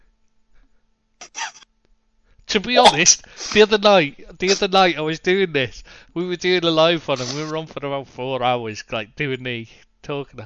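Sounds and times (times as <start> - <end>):
faint steady hum: 0.0 - 10.4
speech: 2.5 - 10.4
short fart: 7.2 - 7.5.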